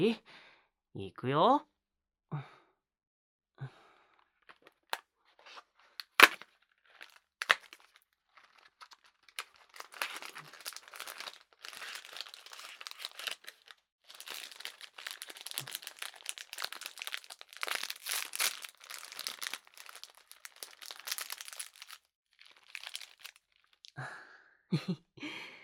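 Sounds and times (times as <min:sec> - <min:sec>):
speech: 0:00.0 - 0:00.4, 0:01.0 - 0:01.7, 0:02.3 - 0:02.6, 0:03.6 - 0:03.8
chocolate snack plastic wrapper crinkling as it is opened: 0:04.5 - 0:23.9.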